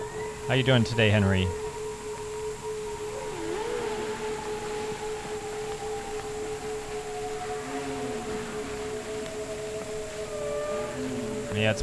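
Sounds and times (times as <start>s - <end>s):
steady sustained tone: 0.0s - 11.8s
speech: 0.5s - 1.6s, 11.6s - 11.8s
whale moaning in the Hudson River: 2.4s - 11.8s.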